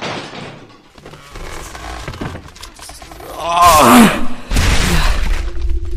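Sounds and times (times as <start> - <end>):
heavy door straining and groaning as it is forced: 0.0 - 5.6
splintering crack of door being forced: 0.0 - 5.8
speech: 3.4 - 3.7.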